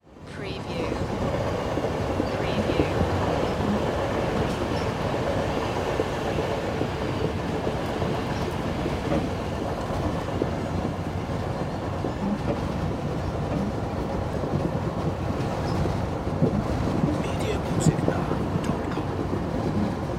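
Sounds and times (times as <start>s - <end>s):
passenger train ride: 0.0s - 20.1s.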